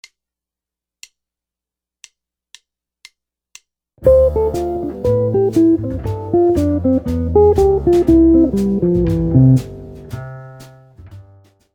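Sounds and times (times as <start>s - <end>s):
jazz guitar licks: 4.0s - 11.4s.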